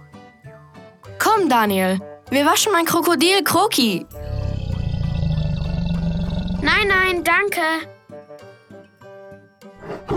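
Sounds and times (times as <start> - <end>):
speech: 1.4 - 4.2, 6.7 - 7.9
tiger roaring: 4.1 - 7.3.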